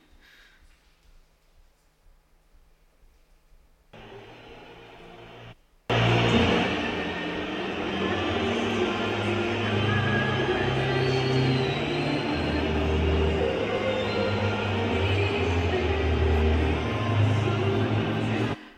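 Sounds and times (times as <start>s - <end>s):
large stadium crowd at a football opening match whistling: 4.0s - 18.6s
national anthem singing: 4.0s - 18.6s.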